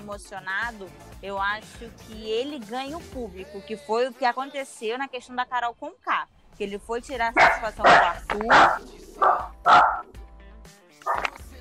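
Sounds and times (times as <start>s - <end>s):
speech: 0.1s - 9.9s
small dog barking in sharp yips: 7.2s - 10.1s, 11.0s - 11.5s.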